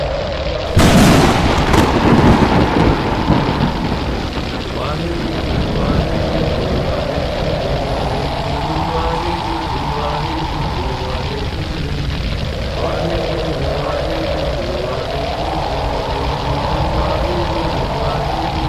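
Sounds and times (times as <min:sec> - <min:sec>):
heavy continuous storm rumble: 0:00.0 - 0:18.6
indistinct voices: 0:00.0 - 0:18.6
thunder crack: 0:00.3 - 0:18.6.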